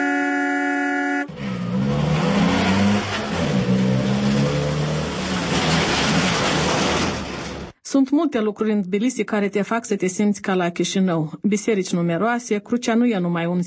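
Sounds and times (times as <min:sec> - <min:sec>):
sustained car horn blaring: 0:00.0 - 0:01.9
dense city traffic with engines revving: 0:00.0 - 0:07.8
speech: 0:08.0 - 0:13.6.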